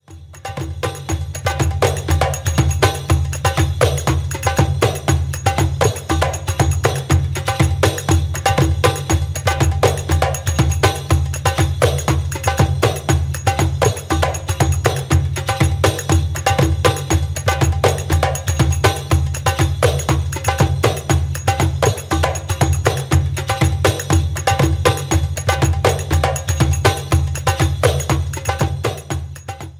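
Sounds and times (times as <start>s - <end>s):
crotales played rapidly: 0.1s - 29.7s.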